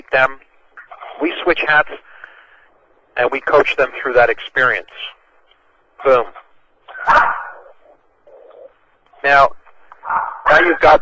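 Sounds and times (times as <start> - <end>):
faint murmur: 0.0 - 11.0
speech: 0.1 - 0.4, 1.2 - 2.1, 3.2 - 5.2, 6.0 - 6.4, 7.0 - 7.4, 9.2 - 11.0
dog barking over a phone line: 6.9 - 7.7, 10.0 - 10.5.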